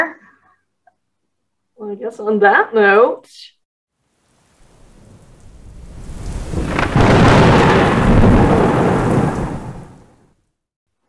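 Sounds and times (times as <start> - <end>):
speech: 1.9 - 3.6
steady rainfall: 4.3 - 10.2
loud roll of thunder: 4.6 - 10.2.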